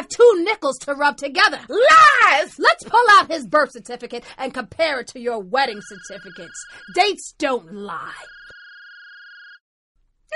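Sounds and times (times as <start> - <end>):
speech: 0.3 - 8.4
old cell phone ringing inside a trunk: 5.7 - 7.1, 7.9 - 9.6.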